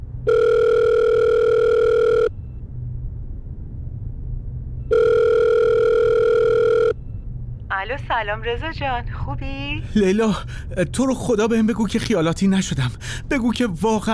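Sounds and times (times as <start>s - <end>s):
low rumbling hum: 0.0s - 14.1s
electronic telephone ringback tones: 0.3s - 2.3s, 4.9s - 7.0s
speech: 8.0s - 14.1s.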